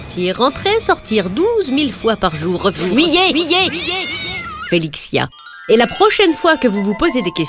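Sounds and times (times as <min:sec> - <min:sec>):
speech: 0:00.2 - 0:07.4
cat meowing: 0:02.9 - 0:04.8.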